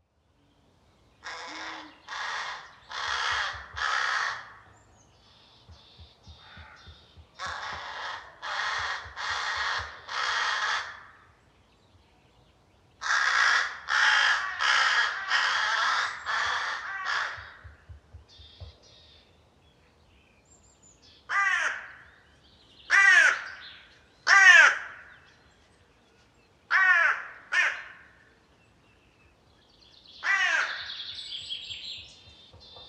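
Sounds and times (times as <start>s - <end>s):
hooded crow Corvus cornix calling: 1.2s - 4.7s, 5.6s - 11.4s, 13.0s - 18.8s, 21.3s - 22.2s, 22.9s - 25.3s, 26.7s - 28.3s, 30.2s - 31.2s.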